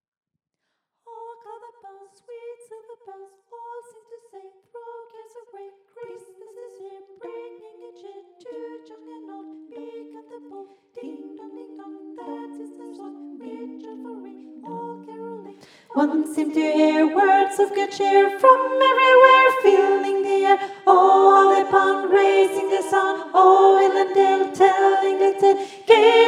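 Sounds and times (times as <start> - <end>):
bass part of a carol: 11.0 - 26.2.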